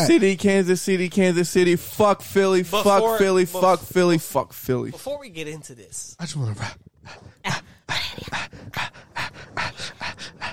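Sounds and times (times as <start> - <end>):
speech: 0.0 - 9.1
dog panting rapidly: 6.5 - 10.5.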